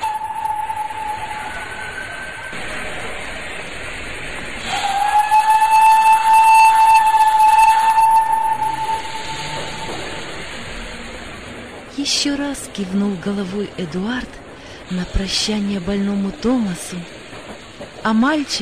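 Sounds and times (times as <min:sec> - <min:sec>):
steam locomotive releasing steam as the train departs: 0:00.0 - 0:18.6
speech: 0:12.2 - 0:17.2, 0:18.0 - 0:18.6.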